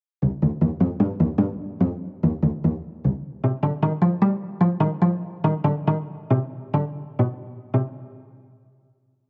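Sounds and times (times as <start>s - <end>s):
solo cello pizzicato: 0.2s - 8.5s.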